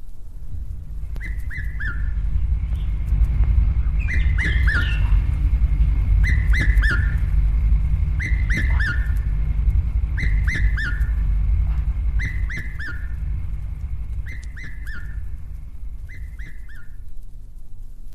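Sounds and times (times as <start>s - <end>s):
low rumble: 0.0s - 18.1s
red-chested cuckoo three-note whistled call: 1.0s - 3.0s, 3.9s - 5.4s, 6.0s - 9.4s, 10.0s - 17.1s.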